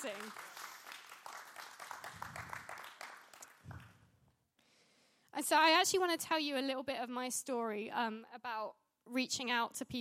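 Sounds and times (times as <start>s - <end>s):
speech: 0.0s - 0.6s, 5.4s - 9.9s
crowd of people applauding: 0.0s - 3.9s.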